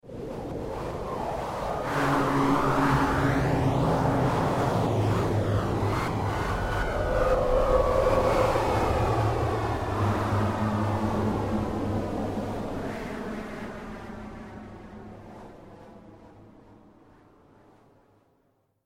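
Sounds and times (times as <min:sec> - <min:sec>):
evil dark wind gust whoosh: 0:00.1 - 0:16.8
scary demonic horror vocal: 0:01.9 - 0:14.4.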